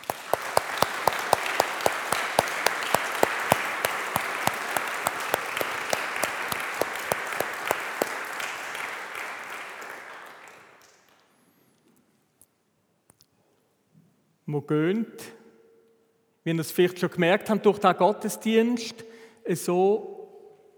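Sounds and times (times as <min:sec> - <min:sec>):
audience applause: 0:00.0 - 0:11.1
speech: 0:14.5 - 0:15.3, 0:16.4 - 0:20.1.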